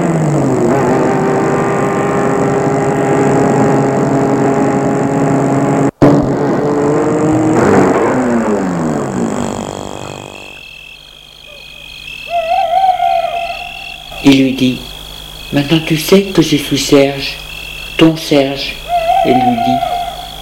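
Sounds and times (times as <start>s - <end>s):
car engine humming at night on a deserted street: 0.0s - 20.3s
soft hooting call: 9.5s - 10.8s, 11.4s - 15.7s, 17.1s - 20.3s
speech: 15.5s - 19.9s.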